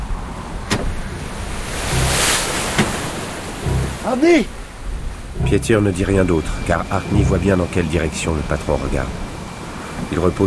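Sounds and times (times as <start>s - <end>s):
gusting wind on the open sea before a storm: 0.0s - 10.4s
surf and waves on the open sea before a storm: 0.0s - 10.4s
sharp knocks: 1.8s - 4.6s, 5.3s - 7.6s
speech: 4.0s - 4.6s, 5.4s - 9.2s, 10.1s - 10.4s.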